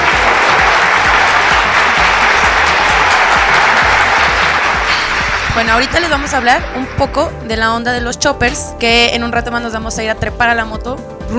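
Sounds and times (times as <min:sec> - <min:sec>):
crowd applause: 0:00.0 - 0:07.0
speech: 0:05.6 - 0:11.3.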